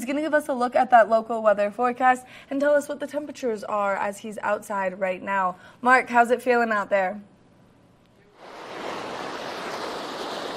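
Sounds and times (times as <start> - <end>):
speech: 0.0 - 7.3
fast-flowing mountain creek water rushing: 8.4 - 10.5.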